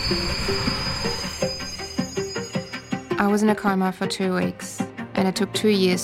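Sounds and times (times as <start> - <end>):
low train rumble: 0.0 - 2.8
train steel wheels squealing: 0.0 - 3.6
speech: 0.1 - 1.3, 3.2 - 6.0.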